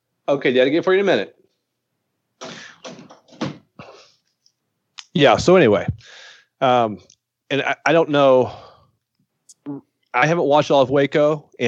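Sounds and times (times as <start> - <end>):
speech: 0.3 - 1.4, 5.2 - 8.6, 9.6 - 11.6
door being shut: 2.4 - 3.8.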